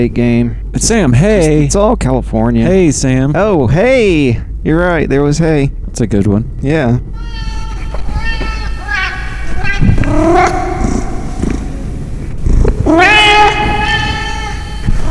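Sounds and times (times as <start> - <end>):
speech: 0.0 - 7.6, 10.1 - 10.7, 12.9 - 13.1
steady low rumble: 0.0 - 15.0
cat meowing: 7.2 - 15.0.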